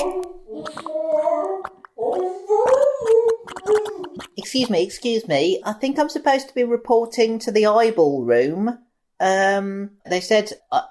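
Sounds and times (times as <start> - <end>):
voice gargling, imitating someone sinking into brown sauce: 0.0 - 5.8
speech: 4.4 - 10.8.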